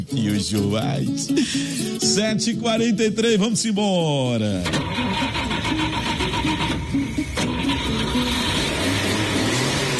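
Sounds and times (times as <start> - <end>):
speech: 0.0 - 6.2
Chevrolet Chevette car engine running: 4.7 - 9.9.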